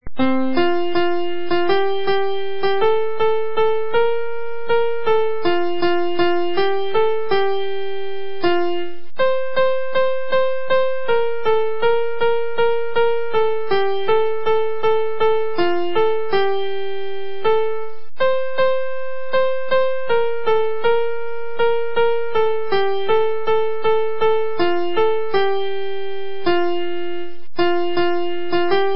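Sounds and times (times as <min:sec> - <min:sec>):
piano song: 0:00.0 - 0:28.9.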